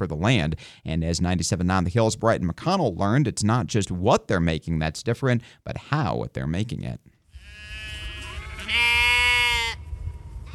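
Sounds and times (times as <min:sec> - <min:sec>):
speech: 0:00.0 - 0:07.8
faint animal sounds: 0:07.3 - 0:09.8
sheep bleating in a field: 0:07.3 - 0:09.8.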